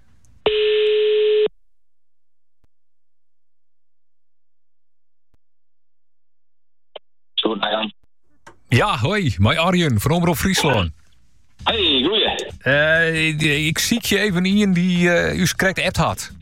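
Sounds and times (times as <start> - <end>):
telephone ringing tone while calling out: 0.5 - 1.5
speech: 8.8 - 11.0, 11.6 - 16.3.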